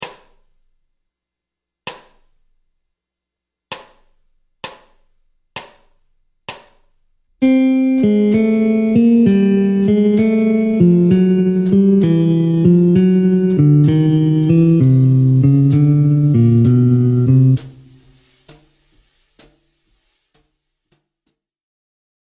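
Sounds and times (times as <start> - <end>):
jazz guitar descending bebop scale in C Lydian flat seven: 7.4 - 18.2.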